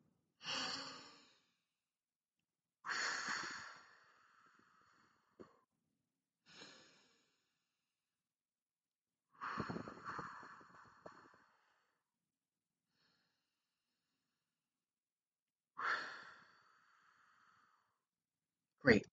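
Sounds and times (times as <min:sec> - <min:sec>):
slow deep breaths in and out: 0:00.4 - 0:01.5, 0:02.9 - 0:05.5, 0:06.4 - 0:07.4, 0:09.4 - 0:12.1, 0:15.8 - 0:18.1
speech: 0:18.8 - 0:19.1.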